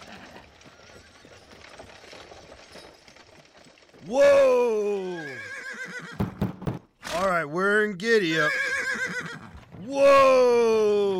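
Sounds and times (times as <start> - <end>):
speech: 4.0 - 4.8, 7.4 - 9.2, 9.9 - 11.1
horse neighing: 4.3 - 6.4, 8.2 - 10.2.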